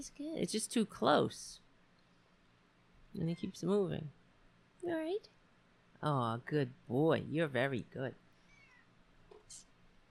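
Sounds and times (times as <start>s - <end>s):
speech: 0.0s - 1.6s, 3.1s - 4.2s, 4.8s - 5.4s, 6.0s - 8.2s
cat meowing: 8.5s - 8.9s.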